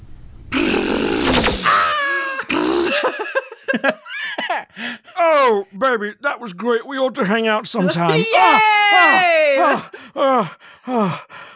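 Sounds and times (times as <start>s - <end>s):
person imitating a cat purring: 0.5s - 1.7s, 2.5s - 3.0s
laughter: 1.7s - 4.8s, 7.8s - 10.0s
speech: 3.7s - 4.1s, 4.8s - 11.5s.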